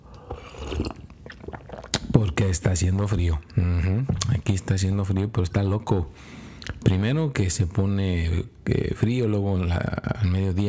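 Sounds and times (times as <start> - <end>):
person sipping hot coffee: 0.0 - 2.1
speech: 2.3 - 10.6.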